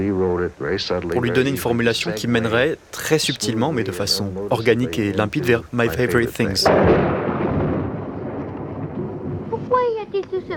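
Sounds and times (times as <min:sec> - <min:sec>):
speech: 0:00.0 - 0:07.1
broad heavy rumble of thunder: 0:06.6 - 0:10.5.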